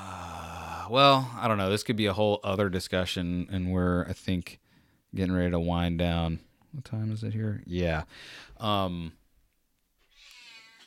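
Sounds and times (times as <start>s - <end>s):
speech: 0.9s - 9.2s
cat meowing: 10.0s - 10.8s
fainter higher-pitched mewing: 10.1s - 10.8s.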